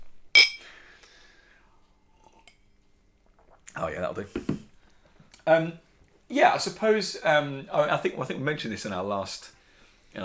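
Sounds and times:
two glasses clinking in a toast: 0:00.4 - 0:00.7
speech: 0:03.8 - 0:04.6, 0:05.5 - 0:10.2.

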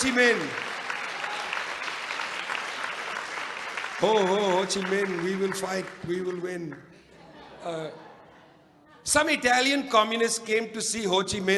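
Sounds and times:
speech: 0:00.0 - 0:00.7, 0:04.0 - 0:06.9, 0:07.6 - 0:08.0, 0:09.0 - 0:11.5
audience applause at a talk honoring a political figure: 0:00.0 - 0:06.5.

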